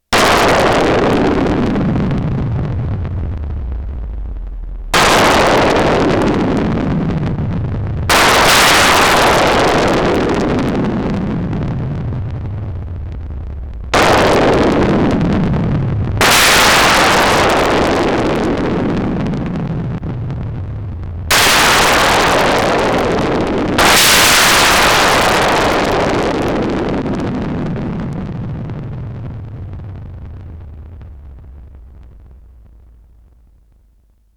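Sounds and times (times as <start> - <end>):
thunder on a Roland SH-101 synthesizer: 0.1 - 32.6.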